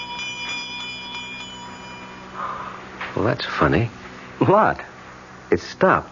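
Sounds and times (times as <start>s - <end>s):
small bell jingling: 0.0s - 2.8s
speech: 3.2s - 4.9s, 5.5s - 6.0s.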